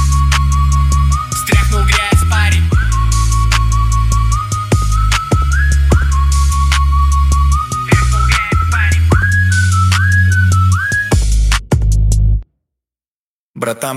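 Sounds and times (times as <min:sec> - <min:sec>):
high steady whistle melody: 0:00.0 - 0:12.0
loud hip-hop beat with heavy bass thumps and crisp drum hits: 0:00.0 - 0:12.4
person rapping: 0:01.4 - 0:02.8, 0:07.8 - 0:09.4.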